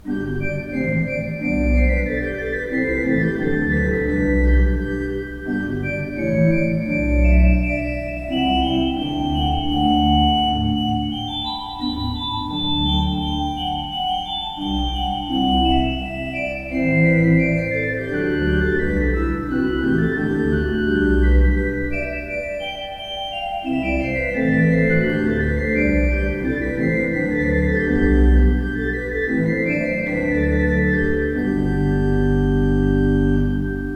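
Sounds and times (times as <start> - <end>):
used organ playing: 0.0 - 33.9.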